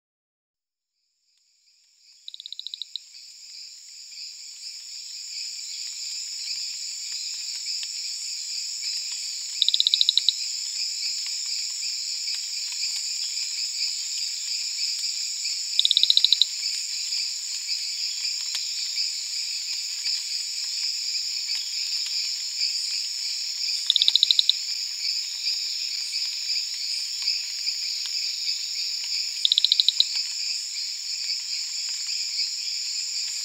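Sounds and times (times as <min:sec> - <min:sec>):
Eleutherodactylus marmoratus calling: 0:02.3 - 0:03.0, 0:09.6 - 0:10.4, 0:15.8 - 0:16.5, 0:23.8 - 0:24.6, 0:29.4 - 0:30.2.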